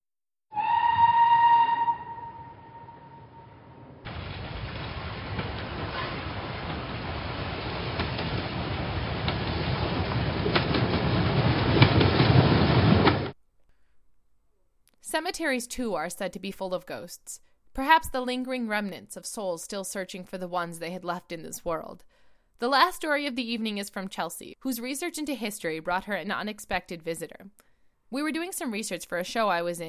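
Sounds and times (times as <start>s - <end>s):
train whistle blast: 0.5s - 3.8s
train rumbling along the tracks: 0.6s - 13.4s
faint periodic rail clacks: 4.1s - 13.4s
speech: 15.1s - 29.8s.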